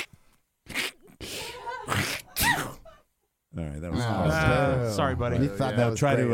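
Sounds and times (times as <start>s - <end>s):
person faking a sneeze: 0.0s - 2.8s
speech: 3.6s - 6.3s.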